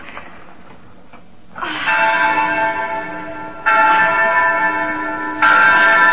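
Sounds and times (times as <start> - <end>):
church bell ringing: 1.8 - 6.1.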